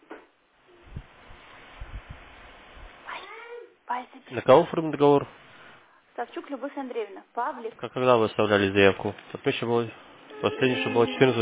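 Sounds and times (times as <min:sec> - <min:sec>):
speech: 0:03.9 - 0:05.4, 0:06.2 - 0:11.4
cat meowing: 0:10.3 - 0:11.4.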